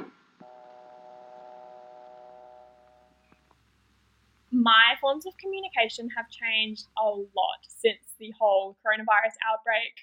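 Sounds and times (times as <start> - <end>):
steady telephone dial tone: 0.4 - 3.1
speech: 4.6 - 10.0.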